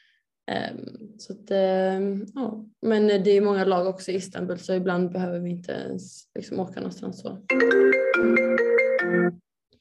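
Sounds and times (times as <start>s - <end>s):
speech: 0.5s - 8.4s
phone ringtone from an incoming call: 7.5s - 9.4s.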